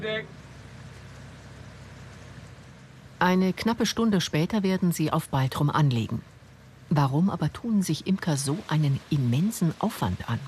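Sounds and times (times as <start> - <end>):
speech: 0.0 - 0.4, 3.2 - 6.3, 6.9 - 10.4
ferry engine rumbling low and steady: 0.0 - 10.4
churning water from ferry casting off from dock: 2.6 - 10.4.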